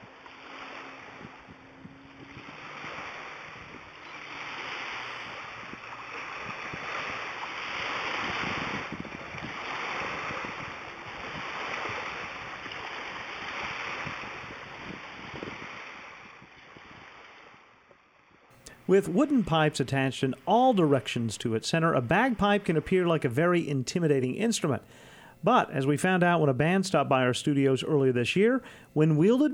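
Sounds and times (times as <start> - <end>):
water lapping and sloshing against a harbor dock: 0.0 - 23.1
wind: 0.0 - 29.5
speech: 18.9 - 29.5.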